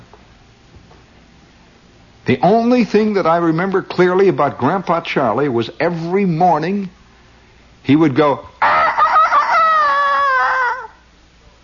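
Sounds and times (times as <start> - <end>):
speech: 2.3 - 7.0, 7.8 - 8.7
human voice imitating a rooster crowing: 8.6 - 11.0.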